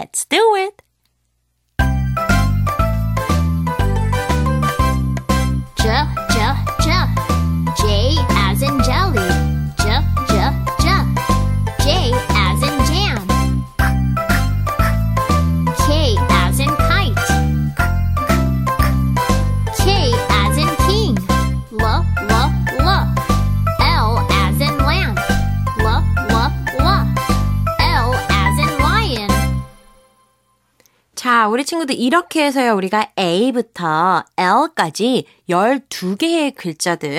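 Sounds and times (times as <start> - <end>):
speech: 0.0 - 0.8, 31.4 - 37.1
bouncy upbeat instrumental backing track for a children's phonics chant: 1.8 - 30.0.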